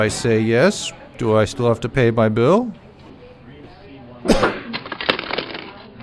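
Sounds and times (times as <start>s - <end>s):
speech: 0.0s - 2.8s
sharp bright crack: 4.3s - 5.7s.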